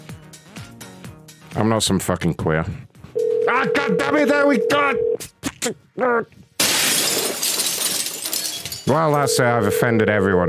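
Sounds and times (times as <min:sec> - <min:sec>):
speech: 0:01.6 - 0:02.9, 0:03.6 - 0:06.4, 0:08.9 - 0:10.4
glass smashing: 0:06.6 - 0:09.3.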